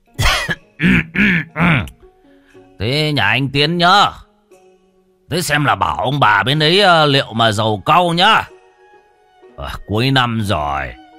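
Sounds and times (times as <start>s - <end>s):
man coughing inside the house: 0.2s - 2.0s
speech: 2.8s - 4.2s, 5.3s - 8.5s, 9.6s - 11.0s.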